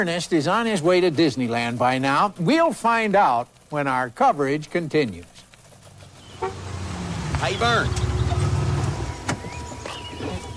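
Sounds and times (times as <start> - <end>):
speech: 0.0 - 5.4, 7.4 - 8.1
car engine rumble: 5.8 - 10.5.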